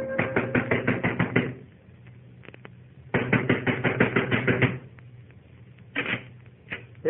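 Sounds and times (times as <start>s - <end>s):
fist pounding on a door: 0.2s - 1.6s, 3.1s - 4.8s
scattered thumps: 0.2s - 7.0s.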